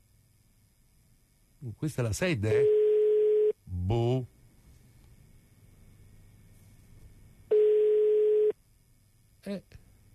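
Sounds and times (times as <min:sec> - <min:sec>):
speech: 0:01.6 - 0:02.8, 0:03.7 - 0:04.3, 0:09.4 - 0:09.8
steady phone tone as an outgoing call is placed: 0:02.6 - 0:03.6, 0:07.5 - 0:08.6.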